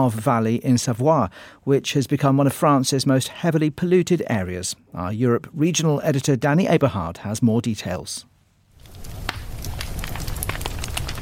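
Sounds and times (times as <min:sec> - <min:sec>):
speech: 0:00.0 - 0:08.3
wood fire crackling in an open fireplace: 0:08.7 - 0:11.2.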